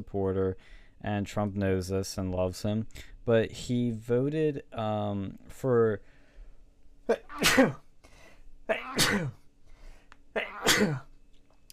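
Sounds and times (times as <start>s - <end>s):
speech: 0.0s - 6.1s, 7.1s - 7.8s, 8.7s - 9.4s, 10.4s - 11.1s
person sneezing: 7.1s - 7.8s, 8.7s - 9.4s, 10.4s - 11.1s.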